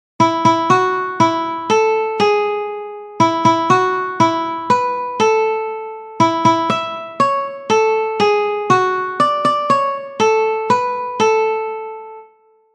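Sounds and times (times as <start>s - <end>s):
guitar melody played on one string: 0.2s - 12.7s.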